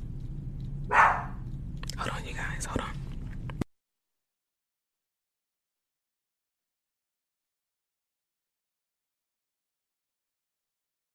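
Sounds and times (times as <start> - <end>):
low rumbling hum: 0.0 - 3.7
sharp dog bark: 0.9 - 1.4.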